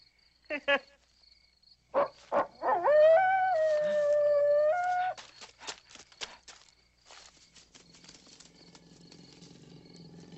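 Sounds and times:
dog howling at night: 2.0s - 5.2s
soft footsteps: 3.6s - 9.8s.

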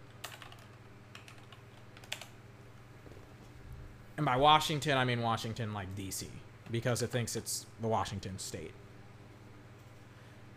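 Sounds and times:
low steady hum: 0.0s - 10.5s
faint typing on a computer keyboard: 0.2s - 2.3s
speech: 4.2s - 8.8s.

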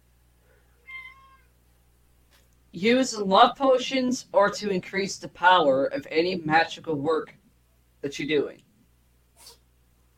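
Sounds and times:
low steady hum: 0.0s - 10.1s
speech: 2.8s - 7.4s, 8.0s - 8.6s
person sneezing: 9.4s - 9.6s.

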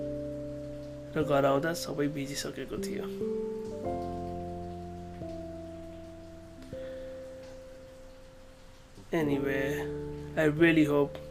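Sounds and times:
steady rain falling: 0.0s - 11.2s
speech: 1.2s - 4.0s, 9.1s - 11.2s.

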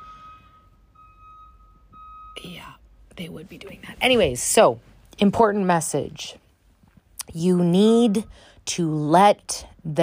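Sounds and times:
truck reversing beeper: 0.0s - 3.1s, 7.9s - 8.6s
speech: 2.4s - 6.4s, 7.3s - 10.0s.

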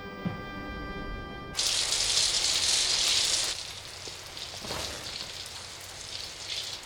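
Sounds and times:
steady tonal hum: 0.0s - 1.6s
shower spraying running water with splashing and dripping: 1.6s - 6.8s.

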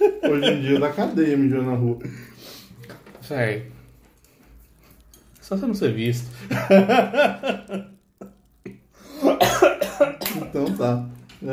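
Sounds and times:
laughter: 0.0s - 1.2s, 6.4s - 8.4s
speech: 0.2s - 2.6s, 3.3s - 3.8s, 5.5s - 8.3s, 9.4s - 11.5s
person coughing: 9.2s - 10.8s.

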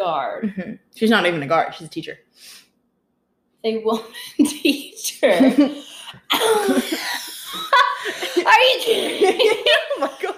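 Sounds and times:
speech: 0.0s - 2.6s, 3.6s - 10.3s
laughter: 4.4s - 10.3s
person coughing with raspy wheezy breaths: 6.3s - 7.4s.

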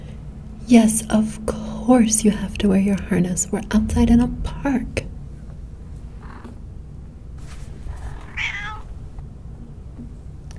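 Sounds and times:
steady low rumble of outdoor noise: 0.0s - 10.5s
speech: 0.7s - 5.1s
cat meowing in protest: 8.2s - 9.0s.

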